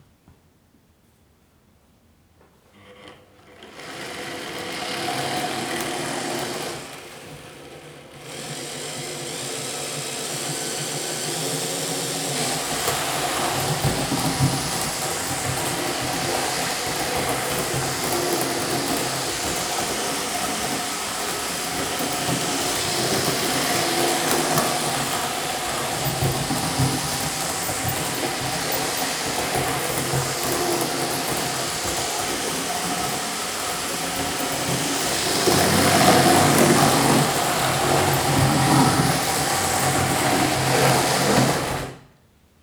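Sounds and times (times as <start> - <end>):
H0 scale model train running fast: 3.6 - 42.0
H0 scale model train derailing: 12.2 - 42.0.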